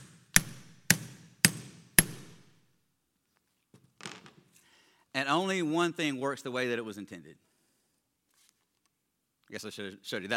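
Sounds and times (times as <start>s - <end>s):
framing hammer driving a large framing nail: 0.0s - 2.6s
speech: 5.2s - 7.5s, 9.5s - 10.3s
faint handling shuffle: 8.3s - 8.9s.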